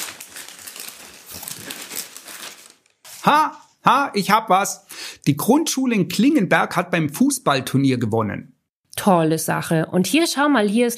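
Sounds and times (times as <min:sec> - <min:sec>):
newspaper pages being turned and leafed through: 0:00.0 - 0:03.8
speech: 0:03.2 - 0:10.9.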